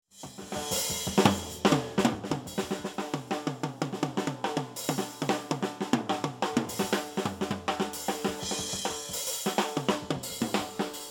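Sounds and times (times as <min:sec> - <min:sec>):
drum kit: 0:00.0 - 0:11.0.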